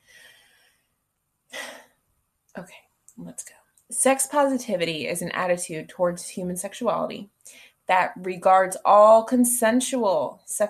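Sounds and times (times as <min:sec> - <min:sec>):
speaker taking a breath: 0:00.0 - 0:00.7
speech: 0:02.6 - 0:10.6.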